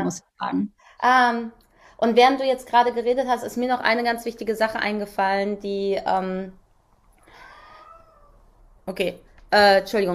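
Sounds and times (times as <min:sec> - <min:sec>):
faint room noise: 0:00.0 - 0:10.1
speech: 0:00.1 - 0:06.6, 0:08.9 - 0:10.1
cat meowing: 0:07.4 - 0:08.4.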